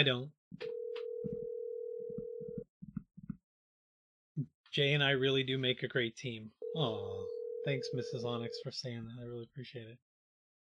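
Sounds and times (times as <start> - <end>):
speech: 0.0 - 1.4, 4.4 - 10.1
electronic phone ringing tone of an unanswered call: 0.6 - 2.6, 6.6 - 8.6.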